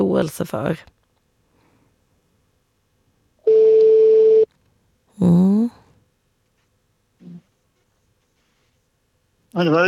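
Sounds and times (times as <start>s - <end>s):
speech: 0.2s - 1.0s, 5.2s - 5.5s, 9.6s - 9.8s
telephone ringing tone heard by the caller: 3.4s - 4.5s.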